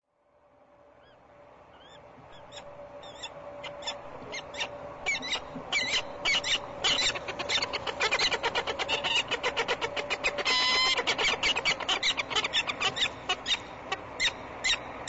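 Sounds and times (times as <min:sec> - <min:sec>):
peregrine falcon cacking: 0:03.7 - 0:15.0.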